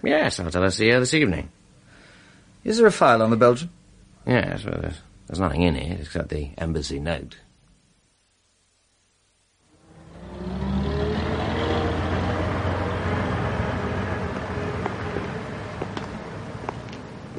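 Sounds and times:
speech: 0.0s - 1.6s, 2.6s - 7.4s
bus engine rumbling while driving: 9.8s - 17.3s.

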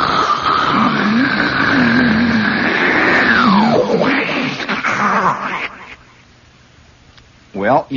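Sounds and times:
voice imitating the sea rolling back out of a hole in a sea cliff: 0.0s - 6.2s
speech: 7.8s - 7.9s.

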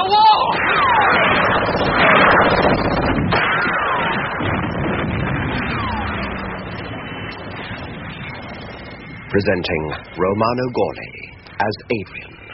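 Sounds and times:
constant loud rumble: 0.0s - 12.5s
gunfire in a battle: 0.6s - 8.6s
speech: 9.4s - 12.3s.

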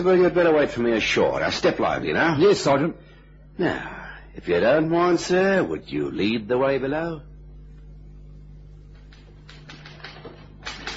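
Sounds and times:
speech: 0.0s - 7.3s
faint steady hum: 0.0s - 10.9s
typewriter clacking below deck aboard a boat: 9.1s - 10.9s.

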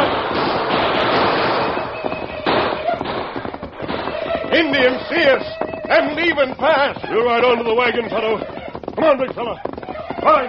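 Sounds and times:
gunshots in a radio drama of a western frontier fight: 0.0s - 6.1s
speech: 4.6s - 10.4s.

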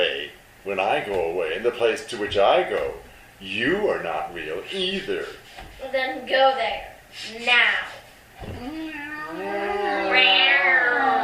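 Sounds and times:
speech: 0.7s - 8.8s, 9.4s - 10.5s
cat meowing: 8.5s - 11.2s.

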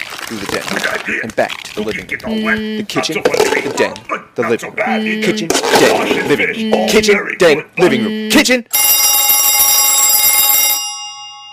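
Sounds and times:
speech: 0.3s - 8.8s
telephone ringing with harsh rattling metallic bell: 8.7s - 11.5s.

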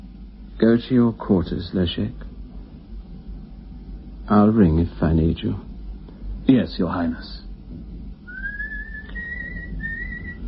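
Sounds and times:
low continuous rumble: 0.0s - 10.4s
speech: 0.6s - 2.3s, 4.3s - 5.7s, 6.5s - 7.9s
man whistling a simple tune in long held notes: 8.2s - 10.4s.

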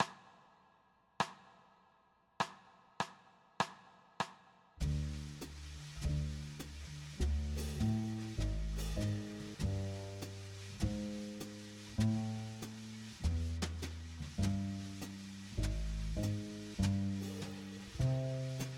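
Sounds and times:
D major blues backing track without piano: 4.8s - 18.7s.

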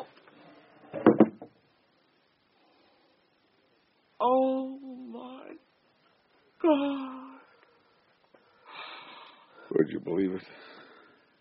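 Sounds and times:
wooden chair being set down: 0.9s - 1.6s
speech: 6.7s - 7.1s, 9.8s - 10.8s.

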